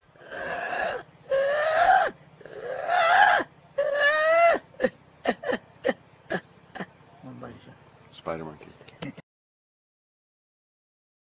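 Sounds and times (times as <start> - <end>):
spider monkey whinnying calls: 0.2 - 5.6.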